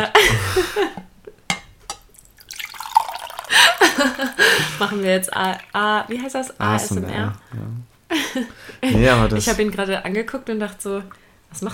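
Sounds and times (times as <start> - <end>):
laughter: 0.0 - 1.0, 3.5 - 5.1
tea drips and trickles: 2.1 - 6.6
tea pouring into a cup: 2.1 - 6.8
speech: 4.0 - 11.7.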